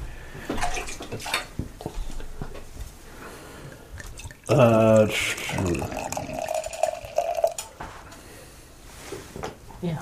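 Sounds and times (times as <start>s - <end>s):
water splashing and running as a glass is rinsed: 4.0s - 7.8s
speech: 4.5s - 6.0s.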